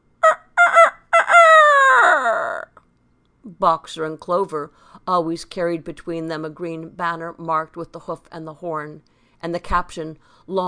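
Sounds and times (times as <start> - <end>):
rooster crowing loudly: 0.2 - 2.7
speech: 3.6 - 10.6.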